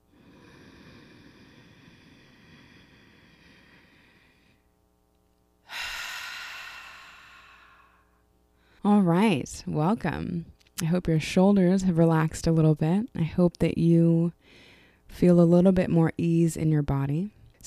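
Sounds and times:
slow deep exhale during a breathing exercise: 0.0s - 4.6s, 5.6s - 8.8s
speech: 8.8s - 17.6s.

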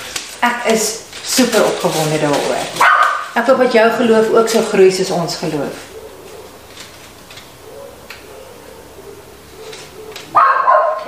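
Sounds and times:
speech: 0.4s - 5.9s
dog barking: 2.8s - 3.3s, 5.9s - 6.6s, 7.6s - 11.0s.

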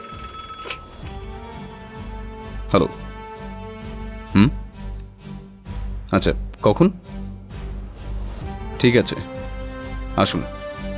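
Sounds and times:
household telephone ringing: 0.0s - 1.2s
speech: 2.7s - 3.0s, 4.4s - 4.6s, 6.1s - 7.1s, 8.8s - 9.3s, 10.2s - 10.6s.

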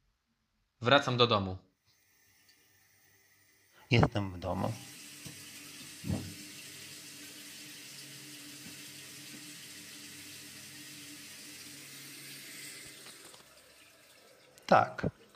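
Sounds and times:
speech: 0.8s - 1.7s, 3.9s - 4.9s, 6.0s - 6.3s, 14.7s - 15.2s
tap water running into a sink at home: 4.1s - 15.3s
hands being washed under running tap water: 4.6s - 15.3s
knock: 6.1s - 6.4s.

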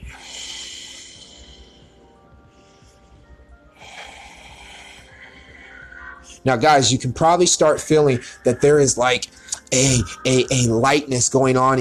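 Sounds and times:
deep breaths drawn in through the nose in a breathing exercise: 0.0s - 6.4s
speech: 6.4s - 11.8s.

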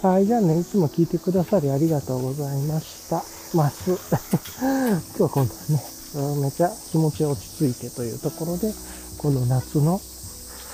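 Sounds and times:
speech: 0.0s - 10.1s
higurashi evening cicadas calling in summer on a back street: 0.0s - 10.7s
laughter: 3.8s - 5.8s.

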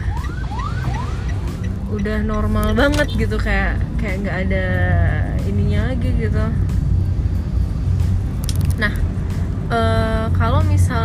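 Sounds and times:
ambulance siren wailing in rising sweeps: 0.0s - 3.3s
steady low rumble of road traffic: 0.0s - 11.0s
speech: 1.9s - 6.8s, 8.8s - 9.0s, 9.7s - 11.0s.

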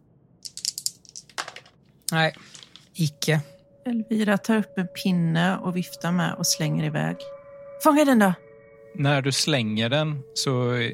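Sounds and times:
two dice clattering across a hard surface: 0.4s - 1.7s, 2.3s - 2.9s
speech: 2.1s - 8.4s, 9.0s - 10.9s.

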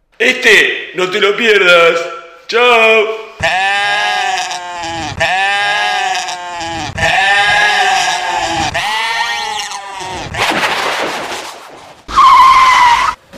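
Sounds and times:
speech: 0.2s - 3.8s
goat bleating: 3.3s - 10.4s
tires squealing while braking automatically: 12.1s - 13.3s.

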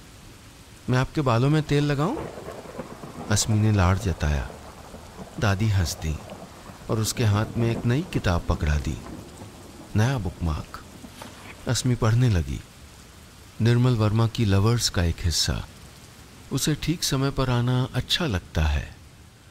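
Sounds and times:
heavy rain: 0.0s - 19.4s
speech: 0.9s - 2.5s, 3.3s - 4.6s, 5.4s - 6.3s, 6.9s - 9.1s, 10.0s - 10.8s, 11.6s - 12.7s, 13.6s - 15.8s, 16.5s - 19.0s.

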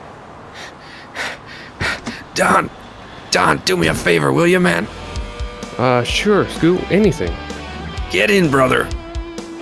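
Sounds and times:
heavy out-of-breath panting: 0.6s - 2.7s, 3.4s - 4.9s
speech: 2.4s - 5.0s, 5.8s - 7.5s, 8.1s - 9.0s.

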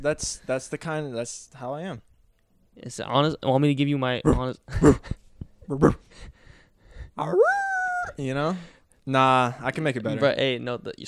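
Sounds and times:
speech: 0.0s - 2.1s, 2.8s - 5.1s, 5.7s - 6.3s, 7.2s - 11.0s
person imitating a dog barking with their voice: 7.4s - 8.2s.

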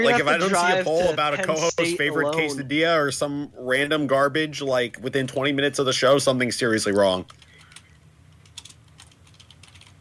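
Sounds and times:
speech: 0.0s - 7.5s
low steady hum: 0.0s - 9.9s
typing on a computer keyboard: 7.2s - 9.9s.

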